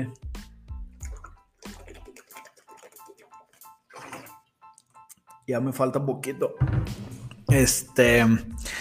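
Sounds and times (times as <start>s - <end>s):
speech: 0.0s - 0.2s, 5.5s - 8.8s
person gulping water from a gallon jug: 0.8s - 5.0s.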